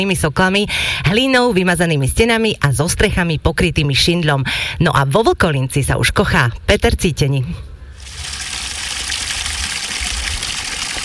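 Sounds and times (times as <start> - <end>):
speech: 0.0 - 8.4
village stream water flowing: 8.0 - 11.0.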